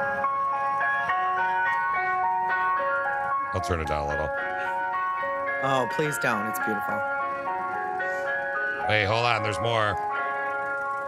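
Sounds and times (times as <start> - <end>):
ice cream van playing a tinny electronic jingle: 0.0 - 11.0
speech: 3.5 - 4.8, 5.6 - 7.1, 8.9 - 10.1.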